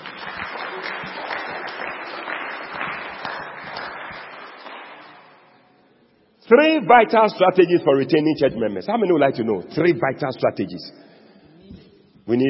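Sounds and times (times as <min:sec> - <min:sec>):
roomful of people clapping: 0:00.0 - 0:05.4
speech: 0:06.5 - 0:11.1, 0:12.3 - 0:12.4.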